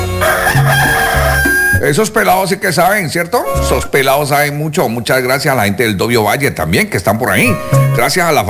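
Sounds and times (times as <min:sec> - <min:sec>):
rooster crowing: 0:00.2 - 0:01.8
speech: 0:01.9 - 0:08.4.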